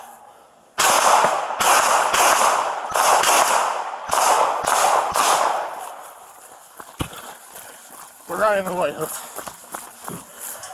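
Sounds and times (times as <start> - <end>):
gunshots during a police confrontation: 0.8 - 6.1
speech: 8.5 - 9.3.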